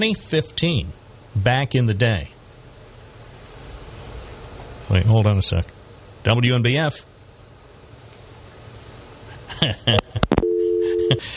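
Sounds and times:
speech: 0:00.0 - 0:02.3, 0:04.9 - 0:07.1, 0:09.6 - 0:10.1, 0:11.1 - 0:11.3
steady low hum like a dial tone: 0:10.3 - 0:11.3
telephone ringing: 0:10.4 - 0:11.2.

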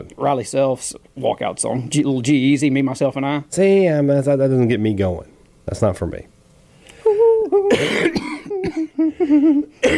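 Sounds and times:
speech: 0:00.0 - 0:06.3, 0:07.5 - 0:09.9
man coughing: 0:07.6 - 0:09.9.

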